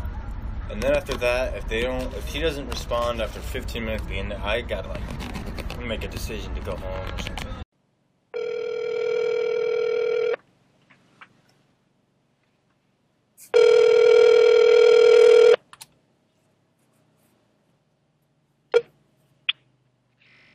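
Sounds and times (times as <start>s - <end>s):
speech: 0.7s - 7.5s
phone call ringing tone: 8.3s - 10.4s, 13.5s - 15.6s.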